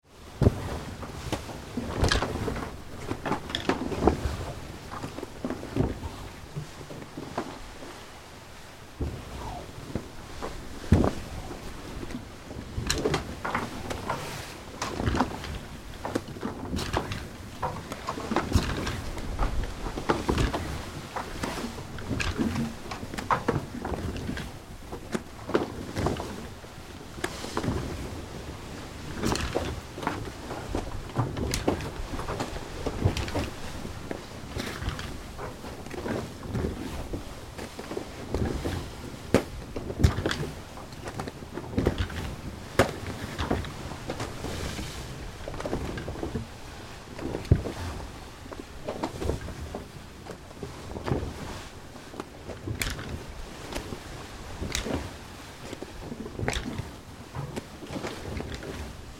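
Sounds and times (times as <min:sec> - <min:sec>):
boat sails flogging: 0:00.0 - 0:59.1.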